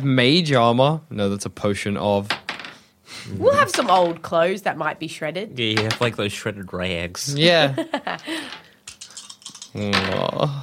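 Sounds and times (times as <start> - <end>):
speech: 0.0 - 2.4, 3.1 - 8.6, 9.7 - 10.6
dice clattering and tapping on a tabletop: 2.3 - 2.8, 8.5 - 10.2.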